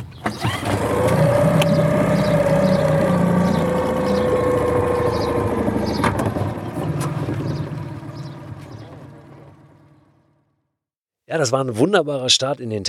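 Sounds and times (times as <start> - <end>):
boat motor chugging on the water: 0.2 - 10.5
speech: 11.4 - 12.8.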